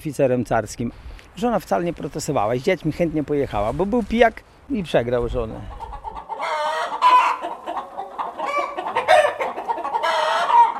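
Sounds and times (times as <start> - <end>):
speech: 0.0 - 5.8
hens clucking and squawking in a chicken coop: 5.4 - 10.7.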